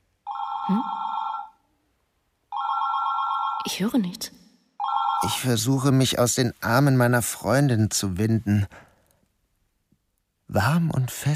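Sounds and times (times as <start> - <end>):
telephone ringing with bright electronic trills: 0.2 - 1.6, 2.5 - 3.8, 4.8 - 5.5
speech: 0.7 - 1.0, 3.6 - 4.4, 5.2 - 8.9, 10.5 - 11.3.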